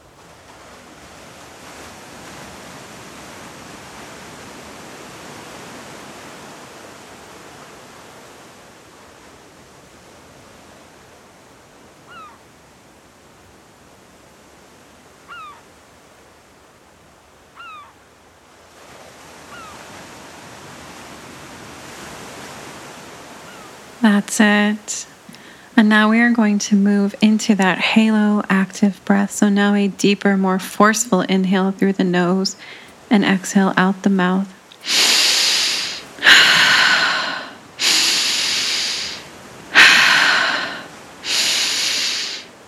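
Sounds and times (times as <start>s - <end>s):
ocean waves breaking on shore: 0.0s - 42.6s
faint brief bird calls chirping: 12.1s - 12.4s, 15.3s - 15.6s, 17.6s - 18.0s, 19.5s - 19.8s
speech: 24.0s - 25.1s, 25.9s - 35.0s.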